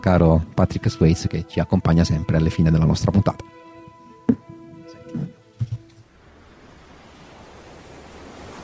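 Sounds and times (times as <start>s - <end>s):
speech: 0.0s - 3.6s
ocean waves breaking in a roar of surf: 3.5s - 8.6s
dull thumps: 4.2s - 6.0s.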